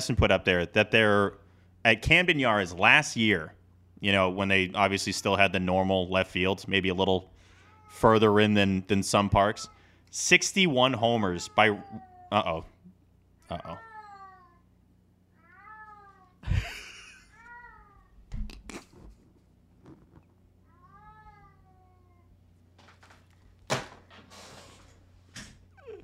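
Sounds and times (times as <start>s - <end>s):
speech: 0.0s - 7.3s, 7.9s - 12.7s, 13.5s - 13.9s
cat meowing: 7.7s - 8.1s, 11.4s - 12.4s, 13.5s - 14.6s, 15.4s - 16.4s, 20.7s - 22.3s.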